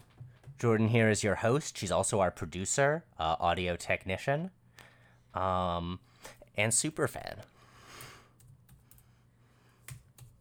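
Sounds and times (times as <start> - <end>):
speech: 0.6 - 4.6, 5.3 - 7.6
typing on a computer keyboard: 8.4 - 9.1.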